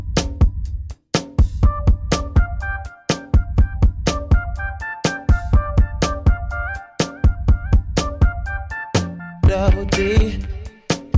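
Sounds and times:
steady punchy beat under layered melodic lines: 0.0 - 11.1
pop song: 4.1 - 11.1.

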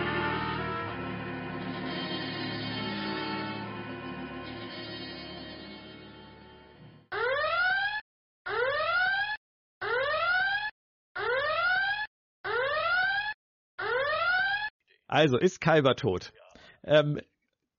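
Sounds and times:
noisy lead-in: 0.0 - 7.0
siren sound effect marking a spoiler warning: 0.0 - 14.7
speech: 15.1 - 17.3.

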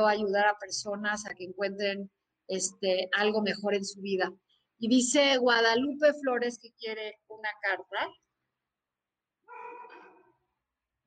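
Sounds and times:
speech: 0.0 - 8.2
dog barking: 9.5 - 10.4.

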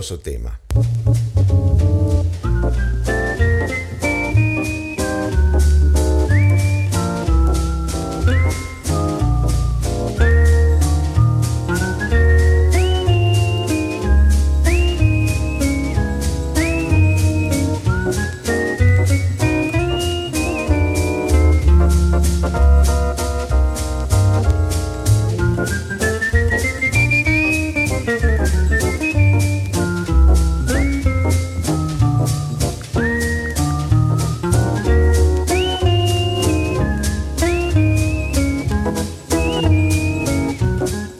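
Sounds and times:
speech: 0.0 - 1.8
bass line: 0.0 - 41.1
man whistling a melodic tune: 2.3 - 23.1, 25.4 - 41.1.

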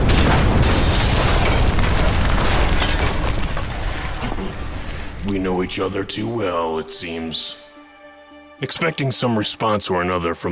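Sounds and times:
explosion of a tripwire-activated explosive: 0.0 - 6.1
speech: 5.3 - 7.6, 8.6 - 10.5.

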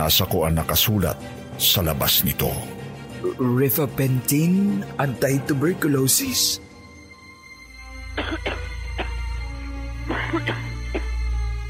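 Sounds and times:
speech: 0.0 - 6.7
woman coughing: 8.1 - 9.2, 10.0 - 11.2.

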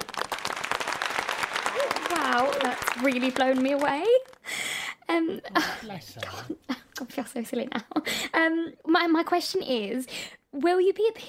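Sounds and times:
audience clapping: 0.0 - 4.5
speech: 2.1 - 11.2.

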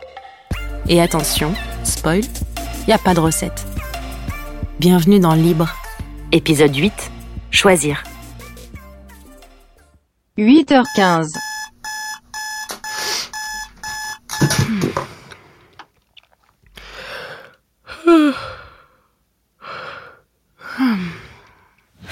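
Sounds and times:
speech: 0.8 - 3.7, 4.8 - 8.1, 10.4 - 11.4
electronic alarm clock beeping: 10.8 - 14.7
drowsy sighs and groans: 16.8 - 21.8.

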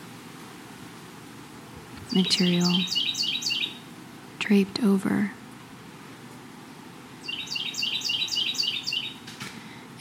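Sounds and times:
low hum: 0.0 - 9.9
speech: 2.1 - 3.1, 4.5 - 5.4
bird chirping overhead outdoors: 2.1 - 3.8, 7.2 - 9.2.

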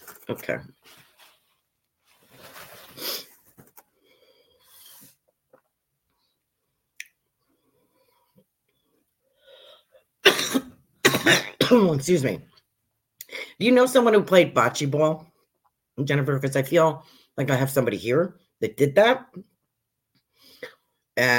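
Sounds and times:
speech: 0.3 - 0.8, 11.3 - 12.5, 13.6 - 15.3, 16.0 - 19.5, 21.2 - 21.3
person coughing from choking on dust: 10.2 - 12.0
raspy throat clearing: 10.2 - 12.0.

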